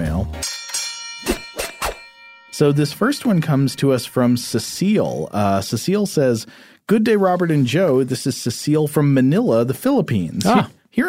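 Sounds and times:
festive Christmas holiday music with bells: 0.0s - 5.5s
speech: 2.6s - 11.0s.

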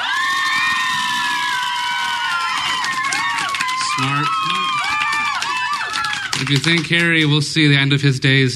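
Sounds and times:
high children's voices and whoops: 0.0s - 6.8s
audience at a live quiz event cheering and shouting: 0.0s - 7.4s
speech: 6.4s - 8.5s.

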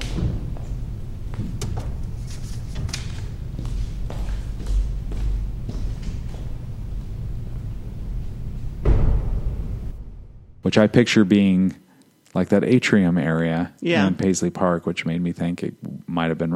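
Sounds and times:
single heavy thud: 0.0s - 2.1s, 8.8s - 10.7s
soft irregular footsteps or knocks moving through a quiet room: 0.0s - 7.8s
speech: 10.7s - 11.8s, 12.4s - 16.5s.

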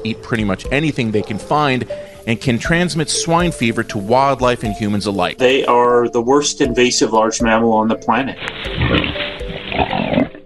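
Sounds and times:
speech: 0.0s - 9.0s
wild boar grunting and squealing: 0.9s - 2.2s, 8.4s - 10.4s.

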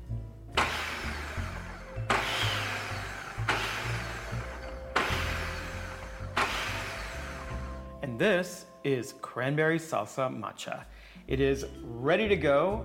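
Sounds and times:
food processor pulsing cranberry salsa: 0.6s - 7.9s
speech: 8.2s - 12.8s.

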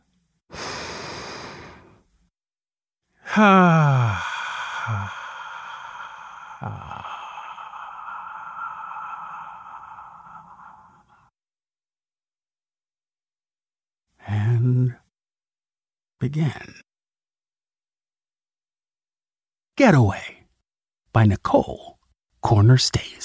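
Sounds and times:
deep breath: 0.5s - 2.1s, 3.2s - 11.3s
speech: 3.4s - 4.3s, 4.9s - 5.2s, 16.3s - 16.8s, 19.8s - 20.3s, 21.2s - 23.2s.

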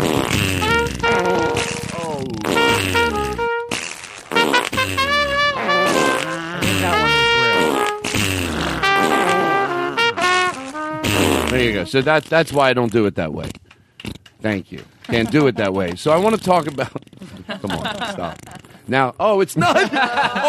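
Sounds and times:
fart sound effects: 0.0s - 12.0s
laughter: 1.1s - 1.6s, 5.6s - 7.6s, 9.1s - 9.9s, 15.1s - 15.9s, 16.6s - 18.6s, 19.6s - 20.4s
speech: 11.9s - 20.4s.

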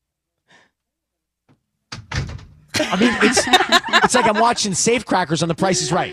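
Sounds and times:
heavy door with dial handle opening with clicks and creaks: 1.9s - 2.7s
laughter: 2.8s - 6.1s
speech: 2.9s - 6.1s.

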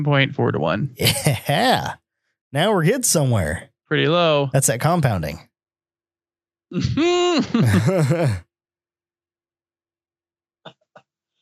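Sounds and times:
speech: 0.0s - 5.5s, 6.7s - 8.4s
laughter: 0.4s - 1.9s, 7.0s - 8.4s
person choking and sputtering after inhaling beer: 6.8s - 8.4s.

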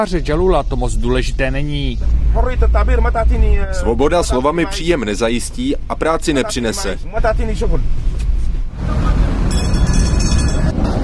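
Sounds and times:
speech: 0.0s - 8.1s
rumble of vehicles and rail traffic at a tram station in central Tunis: 0.0s - 11.0s.

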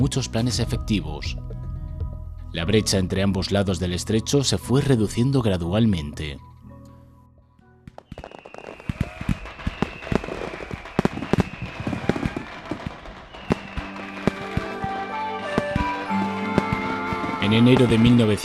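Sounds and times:
speech: 0.0s - 1.4s, 2.5s - 6.5s, 17.5s - 18.4s
fireworks and firecrackers exploding for Chinese New Year in Xiamen and Kinmen: 7.9s - 18.4s.

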